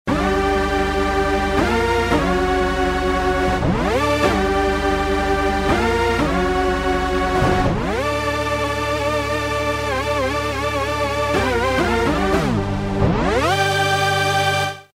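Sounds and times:
synthesizer dance lead: 0:00.2 - 0:14.6.

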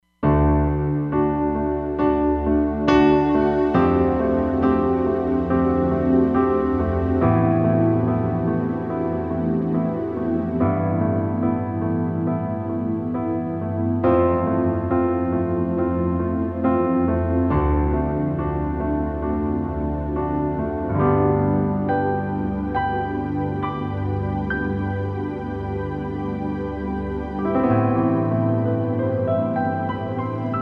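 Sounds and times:
warm pad piano on a Roland Fantom XR: 0:00.2 - 0:30.6.

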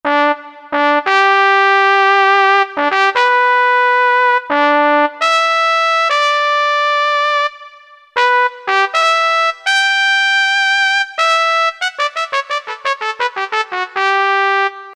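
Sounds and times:
soft synth trumpet factory patch on a Roland U-220: 0:00.1 - 0:14.9.

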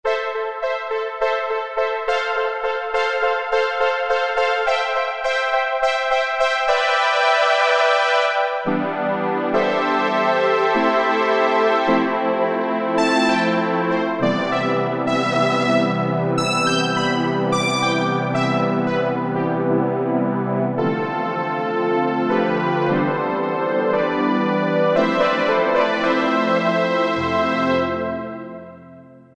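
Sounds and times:
synthesizer pad factory preset: 0:00.1 - 0:29.3.

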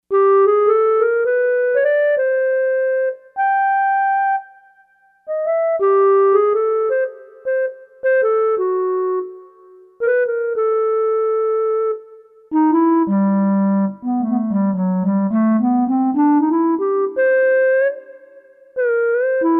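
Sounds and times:
clarinet on Korg MSC-4S Orchestra: 0:00.1 - 0:19.5.

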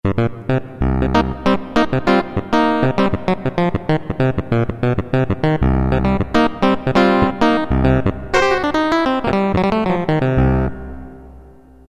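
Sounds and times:
clavinet sound on Roland MT-32 synthesizer: 0:00.0 - 0:11.6.

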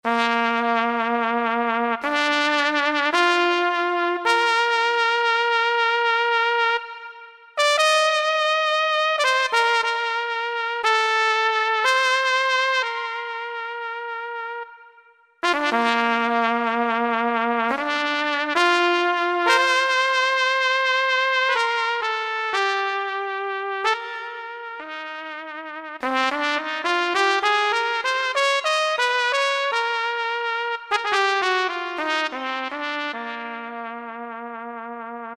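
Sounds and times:
Yamaha PSR-3000 keyboard trumpet factory voice: 0:00.0 - 0:35.1.

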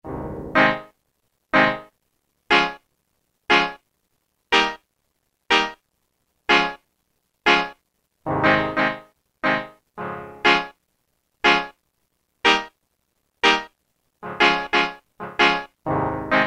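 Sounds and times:
reggae chord on a Roland M-DC1: 0:00.1 - 0:02.8, 0:04.5 - 0:04.8, 0:05.5 - 0:05.8, 0:06.5 - 0:06.8, 0:07.4 - 0:10.8, 0:11.4 - 0:11.8, 0:12.4 - 0:12.8, 0:13.4 - 0:16.4.

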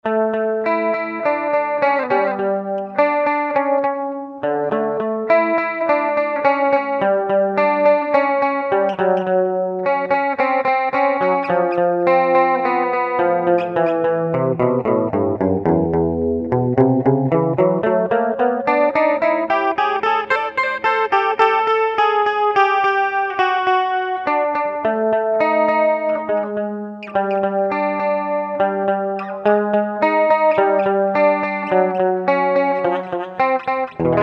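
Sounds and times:
guitar through Digitech RP200 factory presets playing triplets: 0:00.0 - 0:34.2.

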